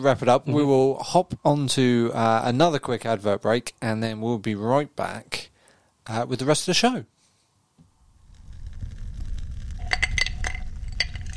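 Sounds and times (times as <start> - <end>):
speech: 0.0 - 5.5, 6.1 - 7.1
fire crackling: 7.9 - 11.3
small hard resin dice clinking against the inside of a glass: 9.8 - 11.3.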